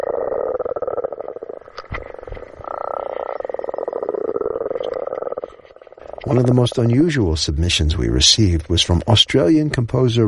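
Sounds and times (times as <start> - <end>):
chorus of spring frogs croaking recorded underwater: 0.0 - 7.3
speech: 6.3 - 10.2.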